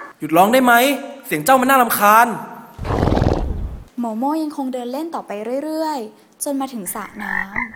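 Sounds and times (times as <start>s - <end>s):
speech: 0.2s - 2.5s, 4.0s - 7.7s
horse neighing in a stable: 2.8s - 3.9s.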